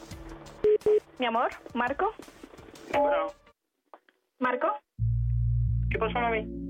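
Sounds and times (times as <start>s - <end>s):
touch-tone keypad beeps of a phone dialing a three-way call: 0.6s - 1.0s
speech: 1.2s - 2.4s, 2.9s - 3.4s, 4.4s - 4.8s, 6.0s - 6.6s.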